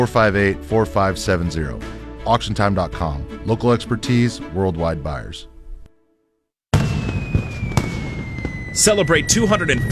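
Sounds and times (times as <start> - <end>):
speech: 0.0 - 5.5, 8.8 - 9.9
fireworks exploding at a lakeside Independence Day fireworks show: 6.7 - 9.9.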